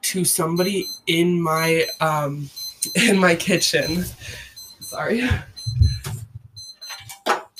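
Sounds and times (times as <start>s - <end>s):
speech: 0.0s - 5.5s
alarm clock with shrill high-pitched electronic beeping: 0.5s - 7.5s
low rumbling: 5.2s - 6.6s.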